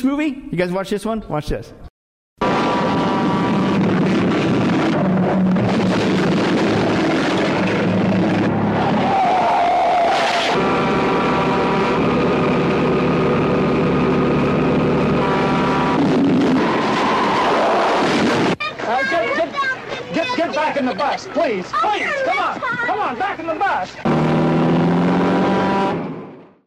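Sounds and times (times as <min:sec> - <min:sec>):
speech: 0:00.0 - 0:01.8, 0:21.2 - 0:24.6
sustained horn-like tones blaring: 0:02.4 - 0:17.4, 0:24.0 - 0:26.4
tense churning sound: 0:02.4 - 0:18.6
rushing road noise: 0:02.4 - 0:26.6
semi-truck engine roaring in a chase: 0:02.4 - 0:26.6.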